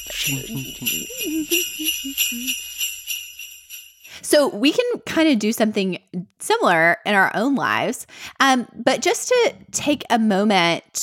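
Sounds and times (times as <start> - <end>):
short bouncy run of melody notes: 0.0 - 3.4
bright jingle bells: 0.0 - 4.7
speech: 0.1 - 2.8, 4.2 - 11.0.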